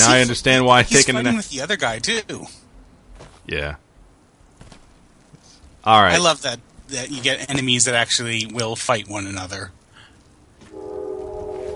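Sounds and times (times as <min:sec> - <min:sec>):
speech: 0:00.0 - 0:02.6, 0:03.5 - 0:03.8, 0:05.8 - 0:09.8
low rumble of rail noise from a passing train: 0:04.0 - 0:11.7
train horn blast: 0:10.7 - 0:11.7.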